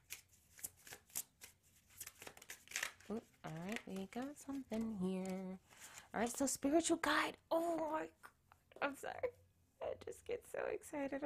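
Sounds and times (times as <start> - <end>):
tarot cards being shuffled and drawn from a deck: 0.0 - 6.5
speech: 3.1 - 9.4, 10.0 - 11.2.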